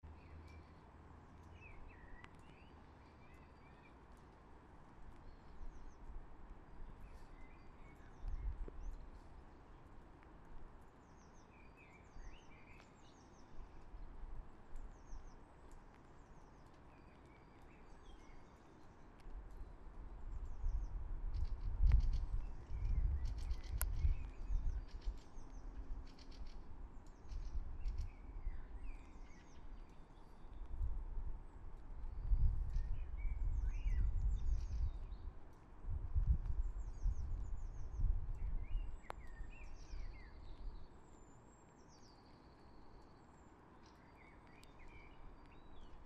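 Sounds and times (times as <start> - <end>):
summer rain in a park in Helsinki Kapyla: 0.0 - 46.0.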